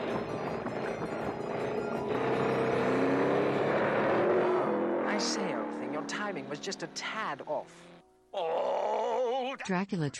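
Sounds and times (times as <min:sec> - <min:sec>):
tires ripping from racing cars: 0:00.0 - 0:06.6
racing car engines roaring: 0:00.0 - 0:08.0
speech: 0:06.3 - 0:10.1.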